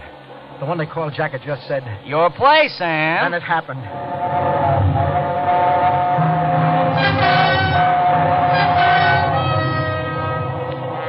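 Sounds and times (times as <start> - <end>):
train roaring through a tunnel: 0.0 - 11.0
speech: 0.6 - 5.2
train whistle squealing: 3.9 - 11.0.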